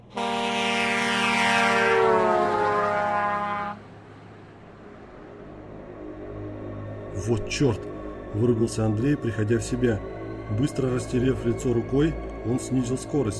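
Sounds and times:
loud rough horn blaring from a huge vehicle speeding past in the oncoming lane: 0:00.0 - 0:03.8
huge rumbling vehicle speeding past in the oncoming lane: 0:00.0 - 0:11.5
low steady rumble: 0:00.0 - 0:13.3
speech: 0:07.3 - 0:13.3.

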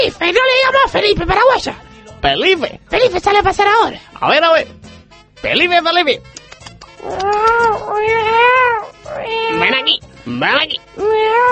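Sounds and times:
speech: 0:00.2 - 0:06.4, 0:07.0 - 0:11.4
cat yowling: 0:07.0 - 0:10.0, 0:10.9 - 0:11.4.

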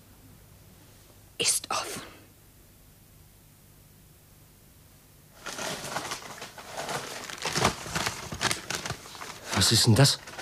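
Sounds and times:
speech: 0:01.4 - 0:02.0, 0:09.6 - 0:10.4
stack of grey paper envelopes rustling and crinkling while handled and shuffled: 0:05.4 - 0:10.4.

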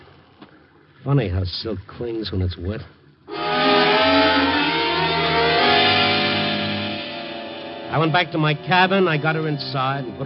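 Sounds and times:
speech: 0:01.0 - 0:03.0, 0:07.9 - 0:10.2
car engine revving and pulling away: 0:03.3 - 0:09.6.

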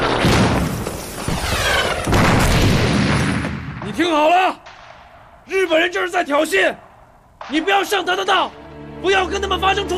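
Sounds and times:
artillery fire during an attack on a military barracks: 0:00.0 - 0:04.0
continuous gunfire during an attack on a military barracks: 0:00.0 - 0:05.4, 0:06.8 - 0:08.5
speech: 0:04.0 - 0:04.7, 0:05.5 - 0:06.8, 0:07.4 - 0:09.9.

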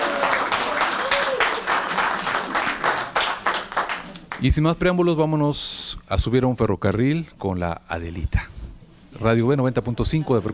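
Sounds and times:
audience applause for a university choir at a live show: 0:00.0 - 0:04.5
speech: 0:04.4 - 0:08.5, 0:09.2 - 0:10.5.

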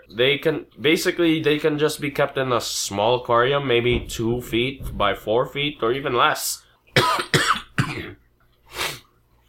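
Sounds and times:
speech: 0:00.1 - 0:07.3
person with a cough and sniffles coughing harshly: 0:07.0 - 0:08.2.

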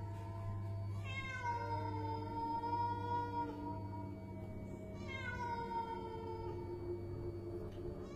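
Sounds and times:
steady low hum: 0:00.0 - 0:08.1
cat meowing in long wailing cries: 0:01.0 - 0:03.7, 0:05.0 - 0:06.6.

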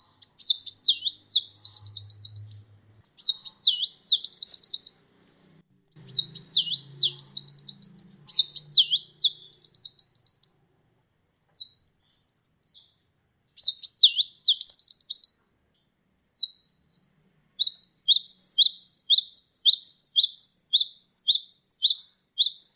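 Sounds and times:
sunbird song of twittering notes and V-shaped whistles: 0:00.0 - 0:05.2, 0:05.9 - 0:22.7
faint low hum: 0:00.0 - 0:11.9.

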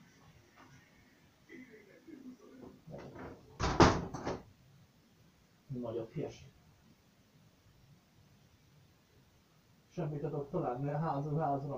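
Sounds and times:
door being shut: 0:02.9 - 0:04.5
speech: 0:05.8 - 0:06.6, 0:10.0 - 0:11.7.

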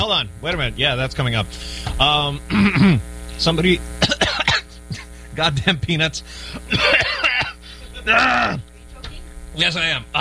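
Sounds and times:
speech: 0:00.0 - 0:04.1, 0:05.4 - 0:07.1, 0:08.0 - 0:08.7, 0:09.6 - 0:10.1
person clearing throat: 0:02.5 - 0:03.0, 0:04.0 - 0:05.1, 0:06.6 - 0:08.7.

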